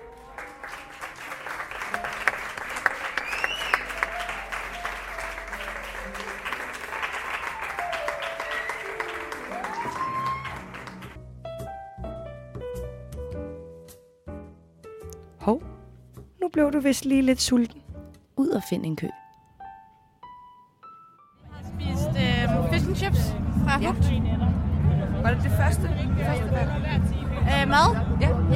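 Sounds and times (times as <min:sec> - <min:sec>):
crowd clapping loudly and steadily: 0:00.0 - 0:11.2
music with sustained tones: 0:00.0 - 0:12.2, 0:19.2 - 0:28.5
speech: 0:16.5 - 0:17.7, 0:18.6 - 0:19.2.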